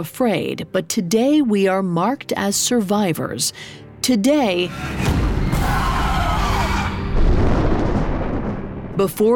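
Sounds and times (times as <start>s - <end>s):
speech: 0.0s - 6.0s, 9.0s - 9.3s
booming crash of thunder: 5.6s - 9.1s.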